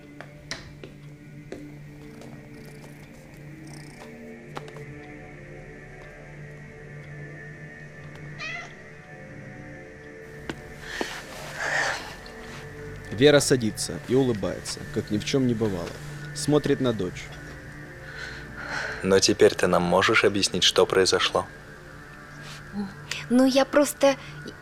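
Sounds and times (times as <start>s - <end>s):
cat meowing: 8.4s - 8.8s
speech: 13.2s - 17.4s, 19.0s - 21.6s, 22.8s - 24.4s.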